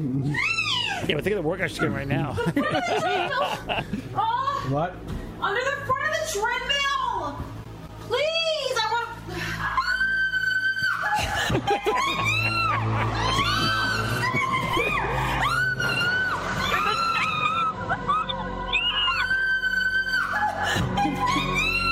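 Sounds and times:
woman screaming in fright at a cricket: 0:00.3 - 0:01.0, 0:09.5 - 0:21.9
speech: 0:01.1 - 0:08.4
laughter: 0:01.8 - 0:04.1, 0:11.0 - 0:18.5.

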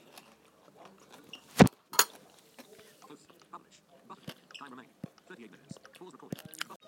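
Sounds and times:
crunching and chewing coleslaw: 0:00.0 - 0:06.8.

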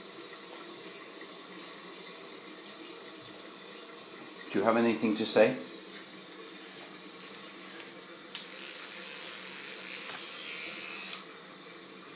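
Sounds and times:
speech: 0:04.6 - 0:05.7
battery-driven toothbrush buzzing: 0:06.0 - 0:12.1.

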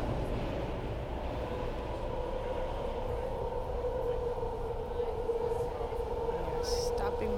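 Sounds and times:
electric BART subway train wheels rumbling on track: 0:00.0 - 0:07.3.

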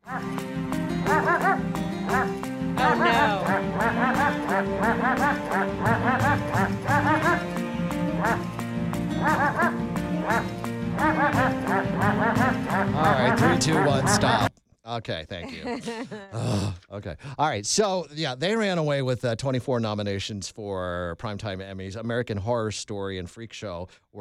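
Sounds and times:
loud musical backing: 0:00.0 - 0:14.5
dog barks arranged like a tune: 0:01.1 - 0:02.3, 0:06.9 - 0:07.4, 0:08.2 - 0:08.5, 0:09.2 - 0:11.8
laughter: 0:02.8 - 0:07.5, 0:15.4 - 0:16.6
speech: 0:14.1 - 0:24.1.

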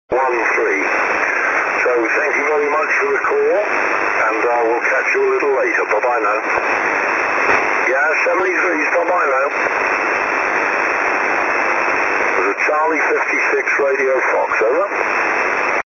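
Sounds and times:
6m SSB radio signal: 0:00.1 - 0:15.8.

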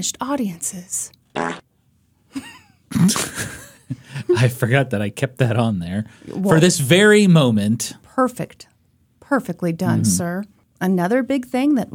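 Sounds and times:
speech: 0:00.0 - 0:01.6, 0:04.4 - 0:08.7, 0:09.3 - 0:11.9
fart sound effect: 0:01.4 - 0:01.6.

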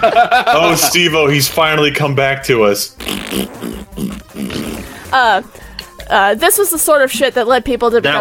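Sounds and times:
laughter: 0:00.0 - 0:02.2
speech: 0:00.0 - 0:04.3, 0:05.1 - 0:08.2
short loud buzzing fart noise: 0:02.9 - 0:05.2.

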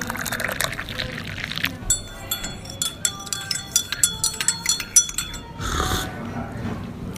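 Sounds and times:
tea pouring at afternoon tea: 0:00.0 - 0:05.6
china clinking at afternoon tea: 0:00.0 - 0:06.1.

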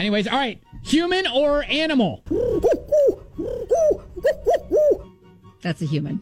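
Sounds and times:
speech: 0:00.0 - 0:02.8, 0:05.6 - 0:06.2
turtle dove purring coos: 0:02.3 - 0:05.1.

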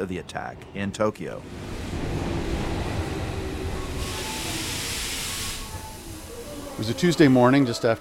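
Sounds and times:
speech: 0:00.0 - 0:01.8, 0:06.8 - 0:07.9
subway train rumbling through an underground station in Tokyo: 0:00.0 - 0:07.9
loud hiss of air from a subway train: 0:03.9 - 0:07.3.

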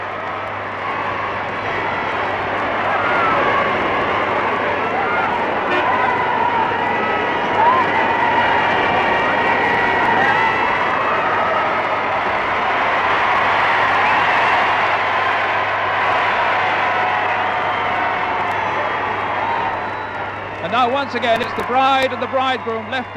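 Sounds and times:
huge crowd cheering: 0:00.0 - 0:23.1
speech: 0:20.9 - 0:23.1.

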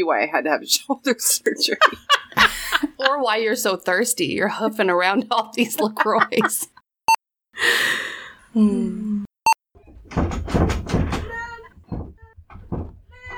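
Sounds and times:
speech: 0:00.0 - 0:06.7, 0:07.6 - 0:09.1
laughter: 0:01.6 - 0:03.2, 0:05.6 - 0:06.8
breathy sighing: 0:07.6 - 0:09.3
child knocking on a door: 0:09.8 - 0:13.3.

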